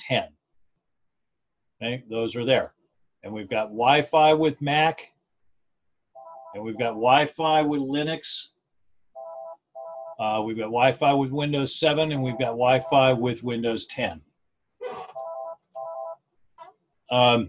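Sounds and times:
speech: 0.1 - 0.4, 1.8 - 5.1, 6.5 - 8.6, 10.2 - 15.2, 17.1 - 17.4
electronic office telephone ringing: 6.2 - 7.1, 9.2 - 10.2, 12.1 - 13.2, 15.1 - 16.2.

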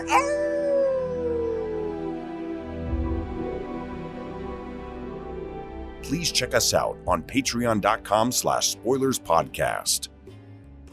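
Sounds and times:
wolf howling: 0.0 - 2.8
low sustained tonal backdrop: 2.2 - 7.9
speech: 6.1 - 10.1.

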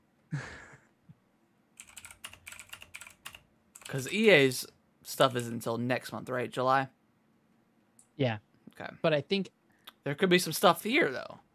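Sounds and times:
typing on a computer keyboard: 1.8 - 4.4
speech: 3.9 - 7.0, 8.2 - 11.4.

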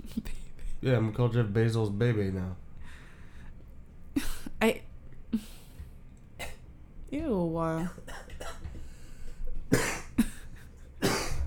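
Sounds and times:
speech: 0.8 - 2.6, 4.6 - 5.6, 7.1 - 8.2
person coughing: 7.9 - 8.8, 9.7 - 11.4.

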